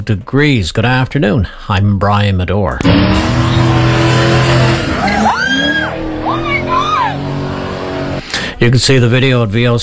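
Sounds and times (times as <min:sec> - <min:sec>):
speech: 0:00.0 - 0:03.7, 0:08.6 - 0:09.8
Corvette tires squealing while spinning donuts on a road at night: 0:02.8 - 0:08.2
Corvette engine roaring and revving: 0:02.8 - 0:08.5.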